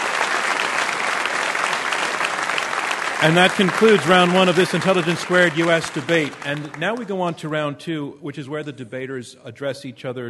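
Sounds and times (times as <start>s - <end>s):
audience applause at a live debate event: 0.0s - 7.3s
speech: 3.2s - 10.2s.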